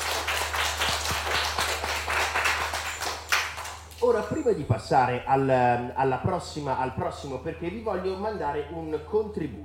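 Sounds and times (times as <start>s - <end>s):
small group clapping: 0.0s - 4.4s
low hum: 0.0s - 9.6s
speech: 4.1s - 9.6s.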